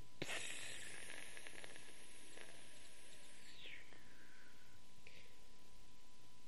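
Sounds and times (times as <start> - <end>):
pressure cooker releasing steam: 0.2 - 3.9.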